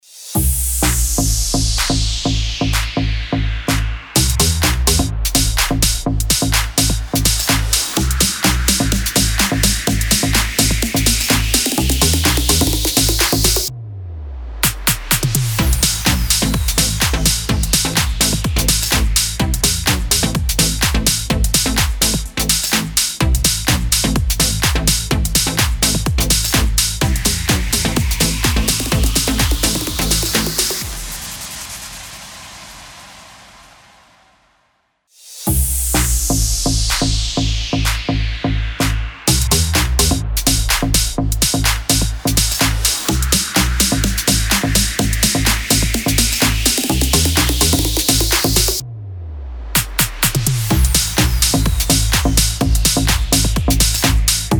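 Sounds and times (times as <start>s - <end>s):
plucked synth house music in A minor: 0.4s - 31.4s, 35.5s - 48.8s, 49.7s - 54.5s.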